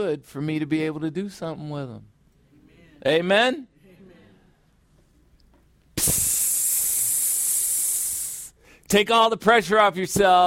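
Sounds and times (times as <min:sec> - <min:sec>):
speech: 0:00.0 - 0:02.1, 0:03.0 - 0:03.7, 0:06.0 - 0:06.3, 0:08.9 - 0:10.4
voice imitating air hissing out of a balloon: 0:06.0 - 0:08.6.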